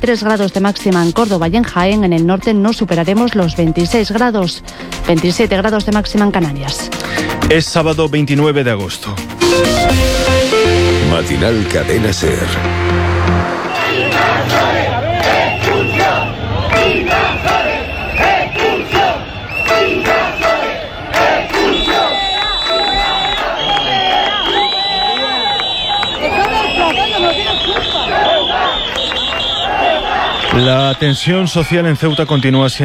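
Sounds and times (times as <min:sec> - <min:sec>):
speech: 0:00.0 - 0:10.1, 0:11.1 - 0:13.0, 0:30.6 - 0:32.8
hundreds of protesters shouting and chanting at street demonstrations in Ceuta: 0:13.5 - 0:32.8.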